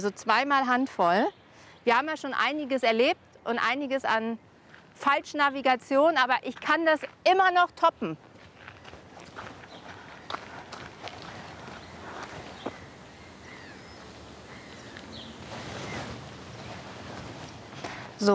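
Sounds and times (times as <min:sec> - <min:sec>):
speech: 0:00.0 - 0:08.3, 0:18.2 - 0:18.3
breezy rushing noise: 0:00.0 - 0:18.3
footsteps crunching along outdoors: 0:08.1 - 0:18.3.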